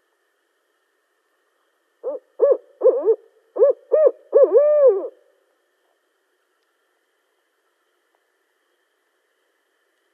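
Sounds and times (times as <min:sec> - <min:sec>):
barred owl hooting: 0:02.0 - 0:05.3.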